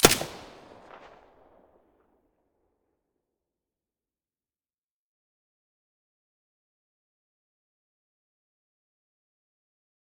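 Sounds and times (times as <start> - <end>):
MP5 submachine gun with silencer firing: 0.0 - 1.2.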